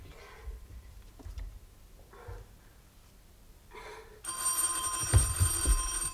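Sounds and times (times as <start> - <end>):
hotel telephone ringing with a metallic bell trill: 4.3 - 6.1.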